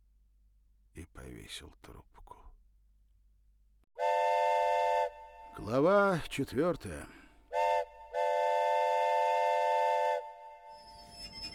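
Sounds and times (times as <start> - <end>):
speech: 1.0 - 2.6, 5.6 - 7.2
loud train whistle: 4.0 - 5.6, 7.5 - 11.5
faint rumble of rolling rail cars of a slowing train: 8.2 - 11.5.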